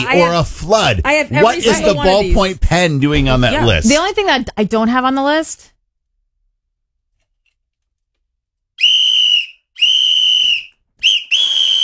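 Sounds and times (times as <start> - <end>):
speech: 0.0 - 5.7
person whistling without a whistle: 8.8 - 11.8.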